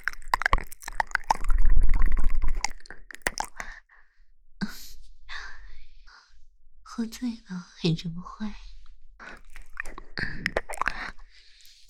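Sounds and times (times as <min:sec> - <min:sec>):
person chewing and biting into crisp moist food: 0:00.0 - 0:03.7, 0:09.2 - 0:11.8
speech: 0:07.0 - 0:08.7.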